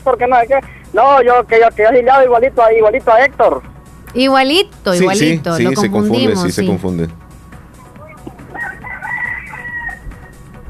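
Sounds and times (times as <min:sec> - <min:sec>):
speech: 0:00.0 - 0:07.2
low hum: 0:03.4 - 0:08.2
laughter: 0:05.3 - 0:06.6
rooster crowing: 0:08.0 - 0:10.5.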